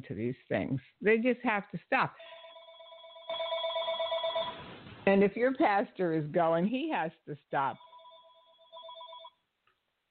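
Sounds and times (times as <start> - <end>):
speech: 0.0 - 2.4, 5.0 - 7.9
phone ringing with an electronic ringtone: 2.2 - 4.8, 7.8 - 9.4.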